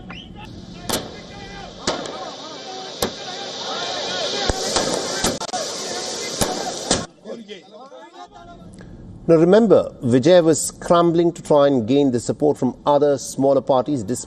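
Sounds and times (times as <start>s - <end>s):
firecrackers bursting at street celebration: 0.0s - 7.4s
street crowd shouting and chattering: 0.0s - 8.7s
speech: 9.3s - 14.2s.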